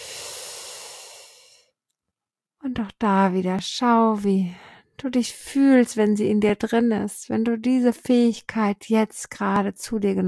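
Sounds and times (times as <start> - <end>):
deep breath drawn in during a guided relaxation exercise: 0.0 - 1.7
speech: 2.7 - 10.2.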